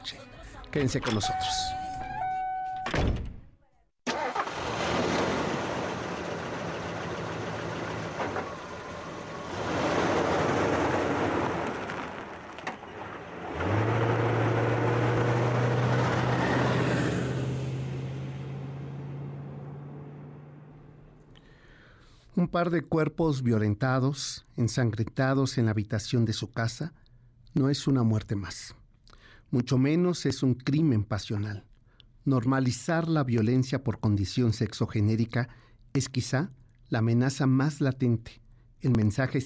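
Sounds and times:
speech: 0.1s - 1.8s, 22.5s - 27.0s, 27.6s - 28.8s, 29.5s - 39.4s
heavy door closing thunk: 2.8s - 3.4s
engine starting and running with a low drone: 4.1s - 21.4s.

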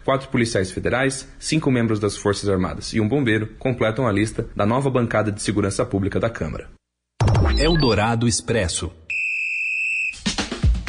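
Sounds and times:
speech: 0.1s - 6.8s, 7.6s - 9.1s
referee whistle blast: 9.1s - 10.3s.

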